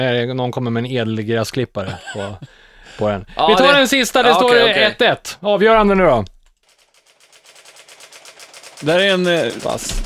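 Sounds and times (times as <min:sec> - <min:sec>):
speech: 0:00.0 - 0:06.4, 0:08.8 - 0:10.0
laughter: 0:01.8 - 0:05.1
typewriter keys clacking: 0:06.7 - 0:10.0.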